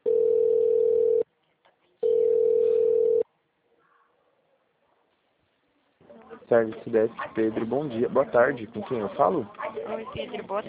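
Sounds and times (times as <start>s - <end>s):
telephone line beeps during a call transfer: 0.0s - 1.2s, 2.0s - 3.2s
speech: 6.5s - 10.6s.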